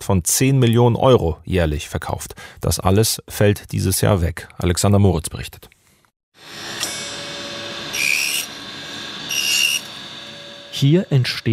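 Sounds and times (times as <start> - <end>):
speech: 0.1 - 5.8, 10.8 - 11.5
circular saw blade slicing thin wooden discs off a wooden rod: 6.4 - 11.5
steady machine hum: 6.4 - 11.5.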